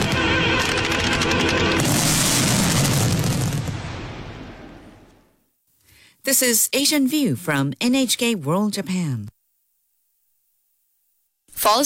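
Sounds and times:
about 2300 fireworks in a huge display popping: 0.0 - 4.8
speech: 6.3 - 9.4, 11.6 - 11.8.

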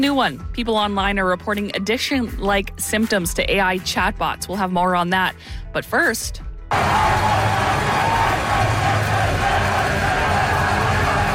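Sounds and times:
speech: 0.0 - 7.2
crowd cheering a hockey team's championship win: 6.7 - 11.3.

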